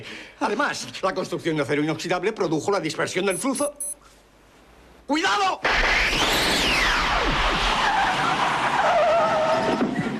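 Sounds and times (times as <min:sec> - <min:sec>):
speech: 0:00.0 - 0:04.1, 0:05.1 - 0:06.4
DeLorean car tires skidding: 0:05.8 - 0:10.1.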